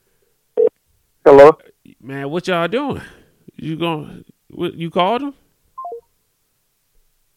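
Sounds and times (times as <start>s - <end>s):
speech: 1.3s - 5.4s
phone keypad tone beep: 5.8s - 6.0s.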